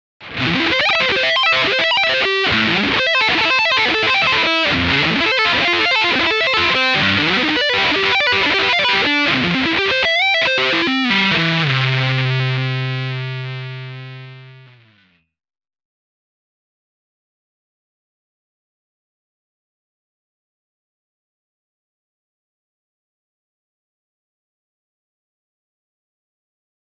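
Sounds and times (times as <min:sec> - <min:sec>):
metal guitar playing: 0:00.2 - 0:15.2.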